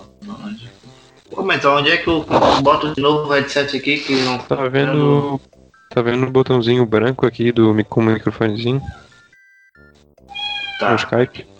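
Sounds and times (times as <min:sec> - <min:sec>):
speech: 0:00.3 - 0:09.0, 0:10.8 - 0:11.5
female cat meowing with drawn-out whiny cries: 0:08.4 - 0:09.1, 0:10.2 - 0:11.2.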